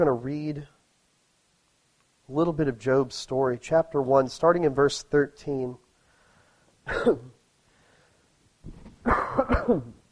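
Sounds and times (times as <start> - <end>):
speech: 0.0 - 0.8, 2.3 - 5.8, 6.9 - 7.3, 8.6 - 10.0
person getting over a cold coughing: 6.9 - 7.4, 9.0 - 10.0
throat clearing: 6.9 - 7.4, 9.0 - 10.0.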